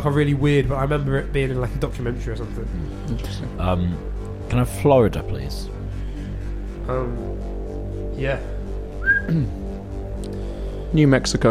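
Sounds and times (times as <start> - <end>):
speech: 0.0 - 5.8, 6.9 - 7.6, 8.2 - 8.6, 9.3 - 9.6, 10.2 - 11.4
person whistling a short tune: 9.0 - 9.5.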